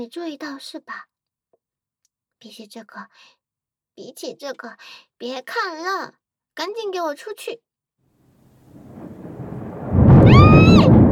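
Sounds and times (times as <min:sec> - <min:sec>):
speech: 0:00.0 - 0:01.1, 0:02.4 - 0:03.4, 0:04.0 - 0:07.7
low rolling thunder: 0:08.6 - 0:11.0.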